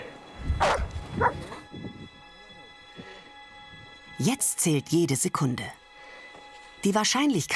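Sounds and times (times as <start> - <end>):
avalanche search dog barking and yipping: 0.6 - 1.6
speech: 4.2 - 5.8, 6.8 - 7.5.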